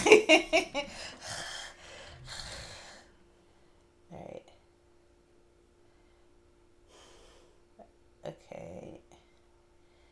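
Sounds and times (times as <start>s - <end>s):
speech: 0.0s - 0.8s
heavy mouth breathing against the microphone: 1.0s - 3.1s.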